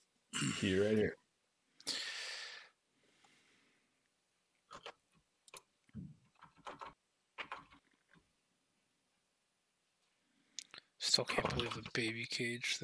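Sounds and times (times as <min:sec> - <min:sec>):
speech: 0:00.4 - 0:01.2, 0:11.2 - 0:12.8
typing on a computer keyboard: 0:04.7 - 0:05.6, 0:06.3 - 0:08.2.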